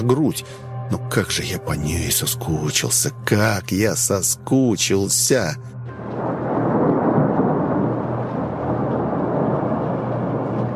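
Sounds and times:
speech: 0.0 - 5.8
rolling thunder shaking a tent: 5.9 - 10.7.

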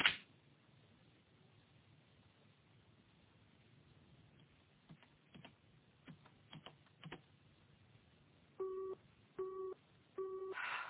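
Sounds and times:
low hiss: 0.0 - 10.8
telephone busy signal beeps on an engaged line: 8.6 - 10.6.

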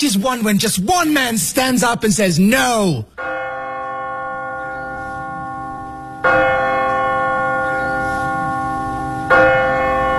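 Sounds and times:
speech: 0.0 - 3.4
church bell striking: 3.1 - 10.1.

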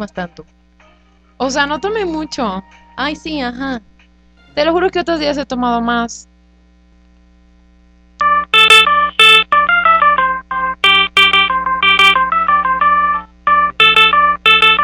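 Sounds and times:
speech: 0.0 - 0.6, 1.4 - 3.9, 4.6 - 6.3
mobile phone ringtone for an incoming call: 8.2 - 14.8.

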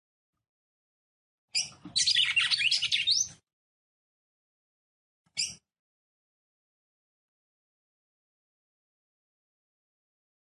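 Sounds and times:
Red-cowled cardinal song: 1.5 - 3.4, 5.3 - 5.6.

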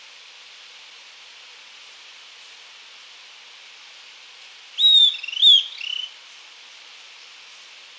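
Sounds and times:
southern antpipit song: 4.8 - 6.2.

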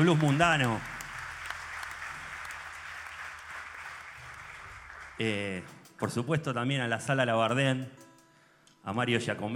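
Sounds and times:
speech: 0.0 - 0.9, 5.2 - 8.0, 8.8 - 9.5
audience applause at a blues festival concert: 0.0 - 5.7.

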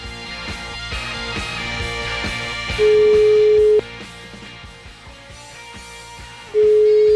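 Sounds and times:
telephone ringback tone: 2.8 - 3.8, 6.6 - 7.1.

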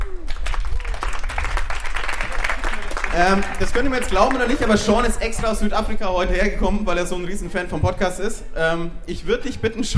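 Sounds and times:
audience applause: 0.0 - 4.9
speech: 3.2 - 9.9.

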